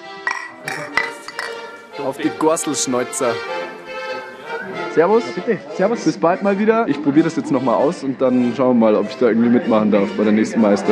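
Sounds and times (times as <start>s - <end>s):
low murmur: 0.0s - 10.9s
glasses clinking in a toast: 0.2s - 1.8s
speech: 2.0s - 3.8s, 4.6s - 10.9s.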